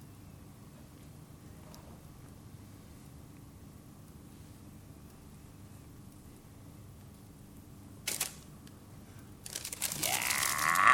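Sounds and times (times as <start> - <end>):
paper envelope being crumpled and thrown away: 8.1 - 8.4, 9.4 - 10.9.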